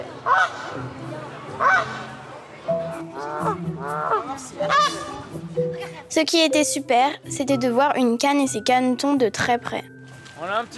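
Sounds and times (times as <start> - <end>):
geese honking loudly: 0.2 - 0.8, 1.5 - 5.3
speech: 4.4 - 10.7.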